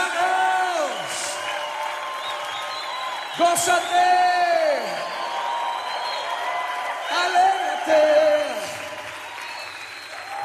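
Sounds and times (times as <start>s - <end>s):
congregation applauding at a church worship service: 0.0s - 10.4s
speech: 3.4s - 5.0s.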